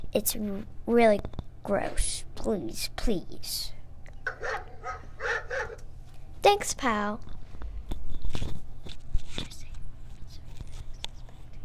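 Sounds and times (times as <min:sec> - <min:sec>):
speech: 0:00.1 - 0:04.5, 0:06.4 - 0:07.3
puppy barking: 0:04.3 - 0:05.9.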